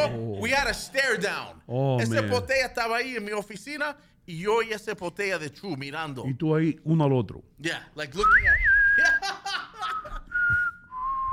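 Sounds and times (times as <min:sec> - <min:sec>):
speech: 0:00.0 - 0:08.8
person whistling: 0:08.2 - 0:09.2, 0:10.0 - 0:11.3
laughter: 0:09.0 - 0:10.6.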